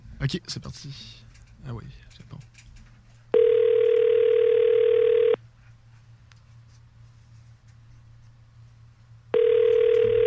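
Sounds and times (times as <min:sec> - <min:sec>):
faint hum: 0:00.0 - 0:10.2
speech: 0:00.2 - 0:02.5
telephone ringback tone on an outgoing call: 0:03.3 - 0:05.4, 0:09.3 - 0:10.2.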